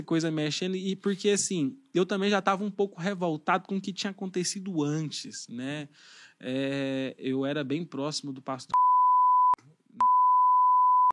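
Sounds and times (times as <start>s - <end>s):
speech: 0.0s - 8.8s
censor bleeps bleeping out names: 8.8s - 11.1s.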